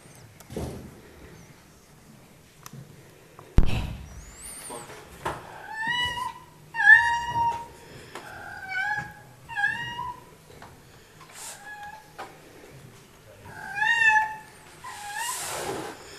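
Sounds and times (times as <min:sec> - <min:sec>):
house cat meowing and scolding: 0:05.5 - 0:10.3, 0:13.4 - 0:15.4.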